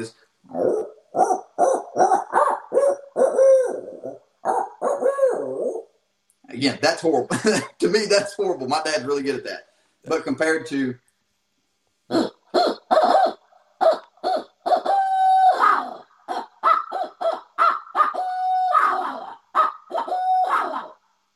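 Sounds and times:
speech: 0.0 - 0.8, 6.6 - 11.0
person imitating owl hoots by voice as a locator call: 0.0 - 6.0, 12.1 - 21.0.

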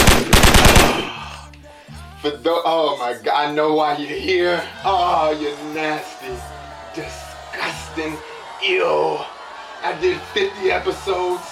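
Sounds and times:
rapid gunfire: 0.0 - 1.2
speech: 2.2 - 11.5.

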